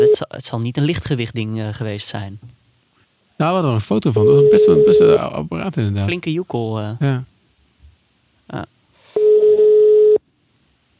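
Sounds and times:
speech: 0.0s - 2.6s, 3.4s - 7.3s, 8.5s - 8.8s
electronic phone call ringing tone: 4.2s - 5.2s, 9.2s - 10.2s.

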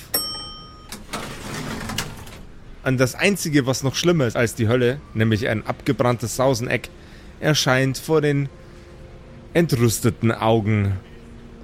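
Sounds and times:
bright elevator chime: 0.0s - 1.0s
elevator door sliding open with a soft mechanical whoosh: 0.7s - 2.8s
speech: 2.8s - 8.6s, 9.5s - 11.1s.

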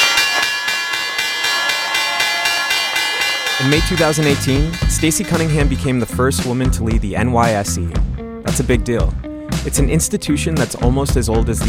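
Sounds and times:
stock exchange opening bell ringing: 0.0s - 6.3s
speech: 3.6s - 11.6s.

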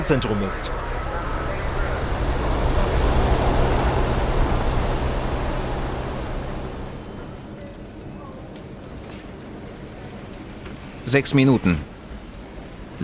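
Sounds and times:
speech: 0.0s - 1.0s, 11.1s - 11.9s
rocket engine roar after launch: 0.0s - 8.0s.

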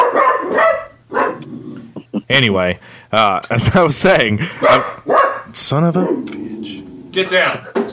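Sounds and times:
dog barking: 0.0s - 1.5s, 4.6s - 6.3s
speech: 2.3s - 7.9s.

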